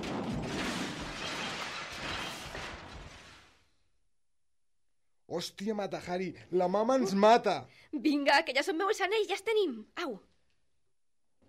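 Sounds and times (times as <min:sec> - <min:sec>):
glass shattering: 0:00.0 - 0:03.6
van smashing through a glass shop window: 0:00.0 - 0:03.6
rumbling debris: 0:00.0 - 0:03.7
speech: 0:05.3 - 0:10.3.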